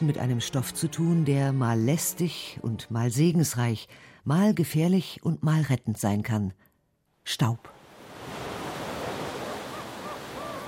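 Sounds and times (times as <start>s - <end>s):
speech: 0.0s - 6.6s, 7.2s - 7.8s
ocean surf: 7.7s - 10.6s
faint gull-like cries: 9.4s - 10.6s.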